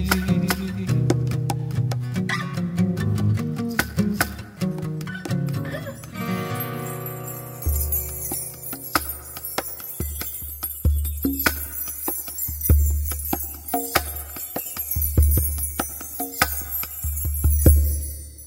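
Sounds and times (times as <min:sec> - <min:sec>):
man singing a Christian worship song: 0:00.0 - 0:01.2
percussive beat: 0:00.0 - 0:02.3, 0:03.2 - 0:06.4, 0:07.6 - 0:18.4.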